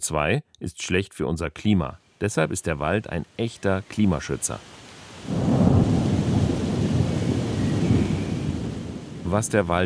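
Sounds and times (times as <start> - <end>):
speech: 0.0 - 5.4, 9.3 - 9.8
steady rain: 2.0 - 9.8
thunder rumbling: 5.2 - 9.8.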